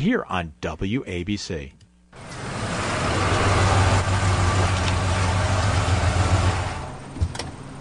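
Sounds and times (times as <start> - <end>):
speech: 0.0 - 2.3
large truck engine idling: 2.2 - 7.8.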